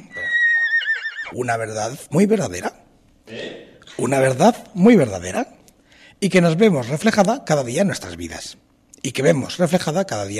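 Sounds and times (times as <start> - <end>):
horse whinnying: 0.0 - 1.4
speech: 1.3 - 5.5, 6.2 - 10.3.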